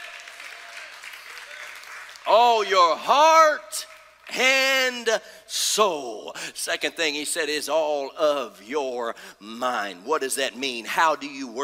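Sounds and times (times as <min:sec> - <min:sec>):
large crowd clapping in praise during worship: 0:00.0 - 0:04.5
speech: 0:02.2 - 0:11.6.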